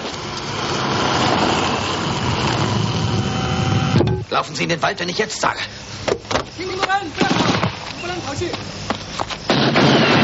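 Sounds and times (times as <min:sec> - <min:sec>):
car engine revving during chase: 0:00.0 - 0:04.3
speech: 0:04.4 - 0:05.9, 0:06.6 - 0:10.1.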